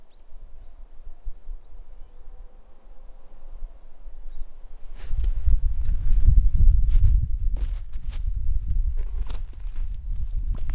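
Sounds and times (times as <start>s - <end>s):
footsteps crunching through snow outdoors: 4.8s - 10.7s.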